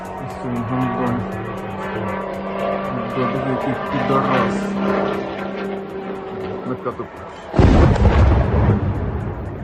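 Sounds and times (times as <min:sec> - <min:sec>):
Iranian-made Shahed kamikaze drone engine buzzing overhead: 0:00.0 - 0:09.6
loud explosive blast: 0:07.6 - 0:09.6.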